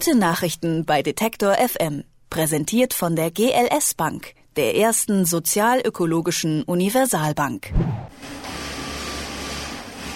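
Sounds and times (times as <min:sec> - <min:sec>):
speech: 0:00.0 - 0:08.6
sewing machines whirring in a clothing workshop in Berlin: 0:08.2 - 0:10.1.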